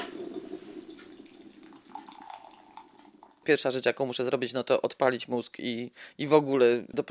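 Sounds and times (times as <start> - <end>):
hot water pouring into a cup: 0.0 - 3.7
speech: 3.4 - 7.0.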